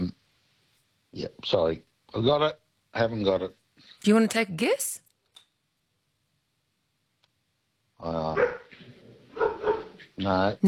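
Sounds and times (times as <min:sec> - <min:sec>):
speech: 0:01.2 - 0:05.0, 0:08.0 - 0:08.6, 0:10.2 - 0:10.6
dog giving whiny barks and sharp yips: 0:08.4 - 0:10.1.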